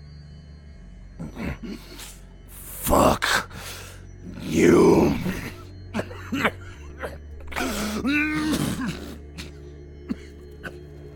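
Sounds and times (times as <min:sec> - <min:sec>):
speech: 0:01.2 - 0:02.2, 0:04.5 - 0:05.5
person coughing: 0:05.5 - 0:10.8
person clearing throat with gravelly groaning: 0:05.9 - 0:10.8.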